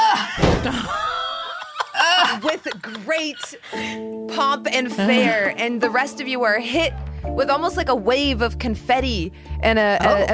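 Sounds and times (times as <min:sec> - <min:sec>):
laughter: 0:00.0 - 0:03.8, 0:05.0 - 0:05.5
two heavy double doors banging open: 0:00.4 - 0:01.0
speech: 0:00.6 - 0:01.0, 0:02.3 - 0:10.3.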